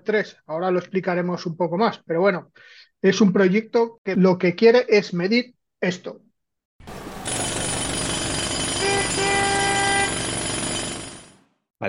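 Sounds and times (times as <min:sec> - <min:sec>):
speech: 0:00.0 - 0:06.2
pneumatic drilling from street construction work: 0:07.2 - 0:11.3
car horns honking: 0:08.8 - 0:10.2.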